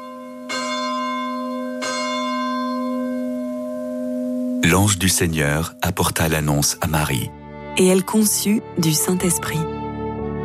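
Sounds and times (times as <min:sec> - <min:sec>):
church bell ringing for the Angelus: 0:00.0 - 0:07.2
speech: 0:04.6 - 0:09.8.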